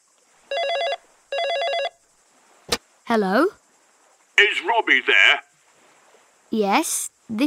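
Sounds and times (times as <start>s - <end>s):
faint steady hiss: 0.0s - 7.4s
telephone ringing: 0.5s - 2.0s
speech: 3.1s - 3.6s, 4.4s - 5.5s, 6.5s - 7.4s.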